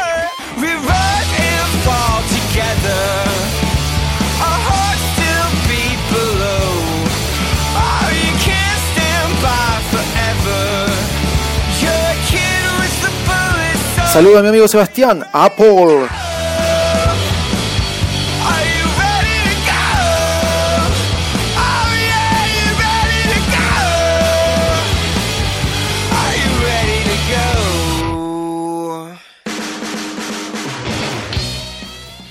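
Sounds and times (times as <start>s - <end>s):
strained soaring sung vocal: 0.0s - 3.6s, 4.4s - 14.2s, 15.2s - 17.3s, 18.3s - 21.0s, 21.6s - 25.0s, 26.1s - 29.4s
loud rock song with full band: 0.0s - 28.4s, 29.5s - 32.2s
speech: 14.2s - 16.2s.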